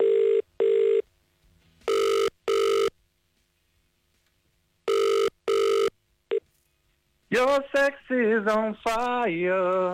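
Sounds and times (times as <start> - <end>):
telephone ringing tone in double bursts: 0.0 - 1.0, 1.9 - 2.9, 4.9 - 6.4
speech: 7.3 - 9.9.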